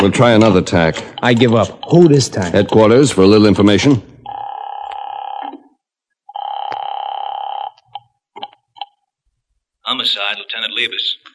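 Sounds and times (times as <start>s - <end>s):
speech: 0.0s - 4.1s
telephone number being dialed: 4.3s - 5.6s, 6.3s - 8.9s.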